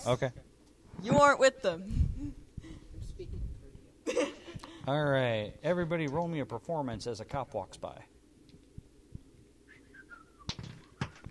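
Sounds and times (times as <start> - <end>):
speech: 0.0 - 2.4, 4.1 - 8.1
low noise: 0.0 - 11.2
person whistling a short tune of descending notes: 9.7 - 10.5.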